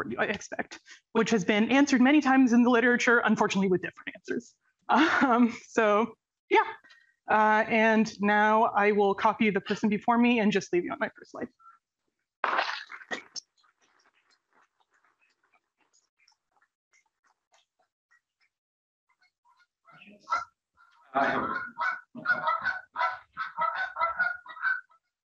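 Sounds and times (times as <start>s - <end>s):
speech: 0.0s - 11.7s, 21.2s - 23.9s
geese honking: 20.0s - 24.9s.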